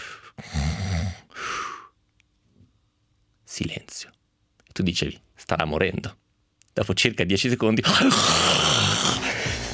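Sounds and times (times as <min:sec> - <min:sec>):
loud rasping snoring from a sleeper with sleep apnea: 0:00.4 - 0:01.3, 0:07.9 - 0:09.6
speech: 0:03.6 - 0:04.2, 0:04.8 - 0:06.2, 0:06.8 - 0:08.7.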